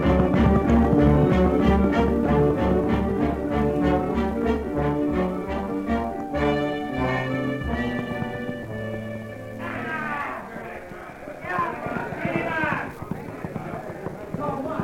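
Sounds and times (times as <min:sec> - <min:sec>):
orchestral music: 0:00.0 - 0:10.3
horse galloping with pounding hoofbeats: 0:00.0 - 0:14.8.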